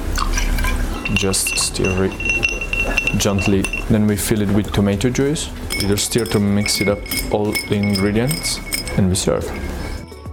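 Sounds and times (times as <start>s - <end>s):
shot of vodka pouring into a glass for a Bloody Mary cocktail: 0.1s - 3.9s
speech: 1.1s - 9.8s.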